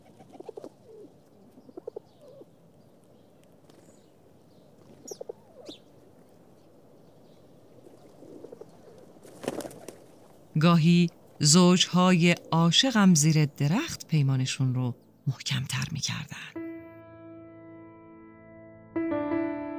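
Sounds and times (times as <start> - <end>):
pigeons cooing: 0.0 - 2.5, 7.8 - 10.2
outdoor ambience: 0.0 - 16.6
speech: 10.6 - 16.6.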